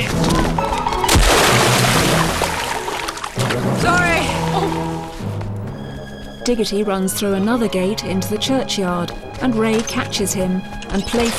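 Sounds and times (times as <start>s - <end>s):
heavy splash of man falling off a footbridge into a stream: 0.0s - 5.2s
water churning and sloshing in a stream: 0.0s - 11.3s
speech: 6.5s - 11.3s.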